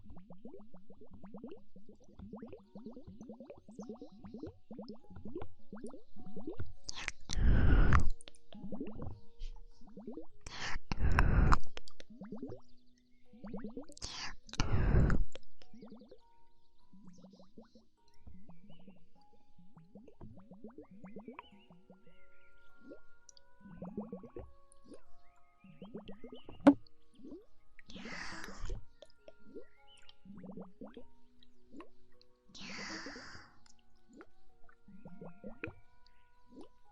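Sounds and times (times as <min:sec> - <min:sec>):
ASMR wet mouth sounds of smacks, pops and squishy clicks: 0:06.9 - 0:09.1, 0:10.2 - 0:12.5, 0:13.7 - 0:15.8
breathy bursts: 0:07.3 - 0:08.1, 0:10.5 - 0:11.8, 0:14.1 - 0:15.3.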